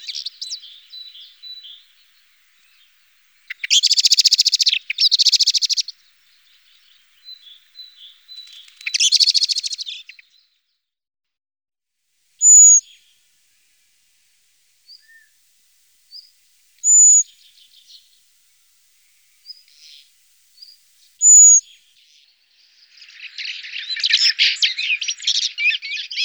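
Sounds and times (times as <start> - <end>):
common blackbird rattling alarm calls: 0.0 - 10.2, 12.4 - 13.0, 16.1 - 18.2, 19.0 - 26.2.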